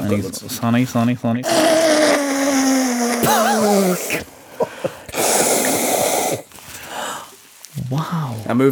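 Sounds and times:
speech: 0.1s - 2.2s, 3.2s - 5.0s, 7.9s - 8.6s
nose blowing into a tissue: 1.4s - 4.4s, 5.1s - 7.0s.

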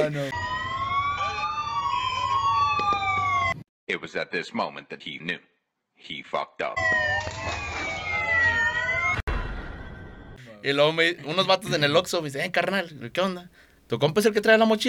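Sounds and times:
speech: 0.0s - 0.6s, 3.9s - 7.6s, 10.6s - 14.8s
police patrol car siren wailing: 0.0s - 3.6s, 6.8s - 9.2s.

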